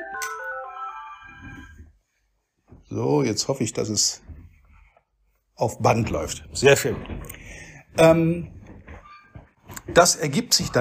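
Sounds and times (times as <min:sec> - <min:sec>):
phone short melodic electronic ringtone: 0:00.0 - 0:01.7
speech: 0:02.9 - 0:04.3, 0:05.6 - 0:08.6, 0:09.9 - 0:10.8.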